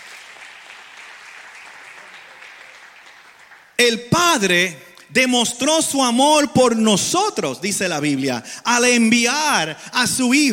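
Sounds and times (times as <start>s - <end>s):
crowd applauding: 0.0s - 3.8s
speech: 3.8s - 10.5s.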